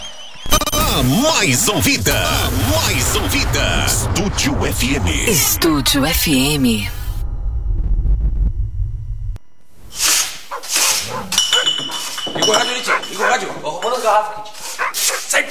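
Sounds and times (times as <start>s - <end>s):
low rumbling: 0.5s - 10.0s
speech: 1.0s - 7.0s
dog barking loudly: 10.4s - 12.0s, 12.8s - 13.7s, 14.6s - 15.4s
glassy clinks: 11.3s - 14.1s.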